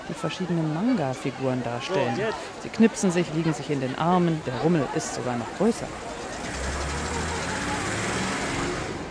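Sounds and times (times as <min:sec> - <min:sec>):
crowd murmur and chatter at a trade fair: 0:00.0 - 0:09.0
speech: 0:00.1 - 0:06.2
small shuttle bus engine humming at a trade fair: 0:04.5 - 0:09.0.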